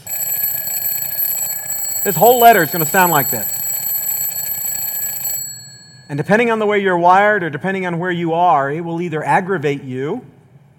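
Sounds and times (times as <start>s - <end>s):
alarm clock ringing with a shrill electronic tone: 0.0s - 6.5s
speech: 2.0s - 3.6s, 6.1s - 10.3s.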